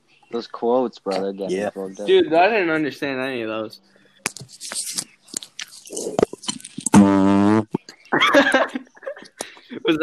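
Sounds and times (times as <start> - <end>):
crunchy mouth noises: 0.3 - 3.4, 4.2 - 10.0
speech: 0.3 - 4.8, 9.9 - 10.0
laughter: 1.0 - 2.2, 8.0 - 10.0
loud buzzy fake fart sound: 6.0 - 7.9.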